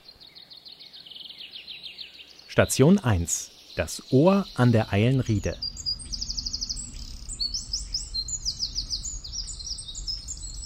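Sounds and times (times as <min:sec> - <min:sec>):
Eurasian wren singing rapid high trills in a city forest: 0:00.0 - 0:10.6
speech: 0:02.6 - 0:05.7
faint low rumble: 0:04.7 - 0:10.6.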